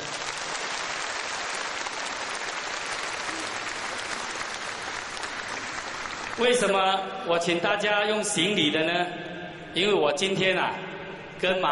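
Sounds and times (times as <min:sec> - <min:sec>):
large seated audience applause: 0:00.0 - 0:06.8
speech: 0:06.4 - 0:11.7.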